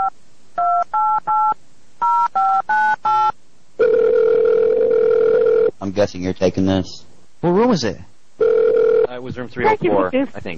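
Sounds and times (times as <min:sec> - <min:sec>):
steady continuous phone tone: 0:00.0 - 0:05.8, 0:08.4 - 0:09.8
speech: 0:06.0 - 0:08.1, 0:09.2 - 0:10.5.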